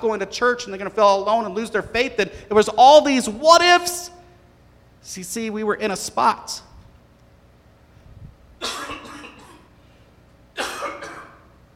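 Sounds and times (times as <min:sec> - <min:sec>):
speech: 0:00.0 - 0:04.2, 0:05.0 - 0:06.7
person coughing harshly from choking: 0:08.6 - 0:09.8, 0:10.6 - 0:11.5.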